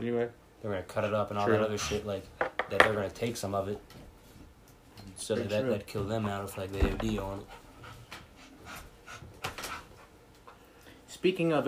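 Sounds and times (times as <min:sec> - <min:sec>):
speech: 0:00.0 - 0:04.0, 0:05.1 - 0:07.6, 0:11.2 - 0:11.6
dog panting: 0:05.9 - 0:10.7.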